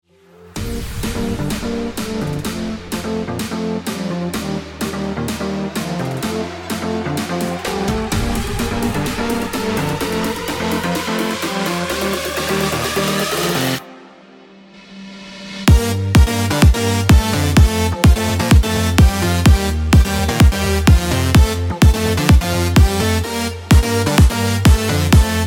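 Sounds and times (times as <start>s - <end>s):
EDM electronic music: 0.1s - 25.4s.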